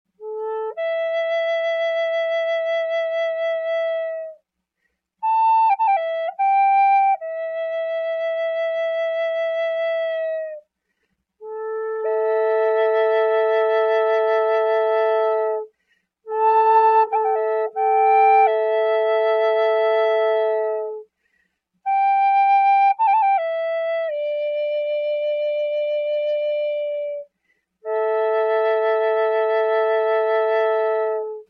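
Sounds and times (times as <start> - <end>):
medium A flute drone: 0.2 - 4.4, 5.2 - 10.6, 11.4 - 15.7, 16.3 - 21.0, 21.9 - 31.4.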